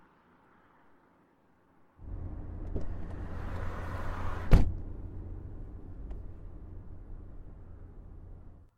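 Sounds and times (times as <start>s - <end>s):
car engine rumbling as the vehicle pulls away: 2.0s - 8.7s
sharp thump: 4.4s - 4.8s.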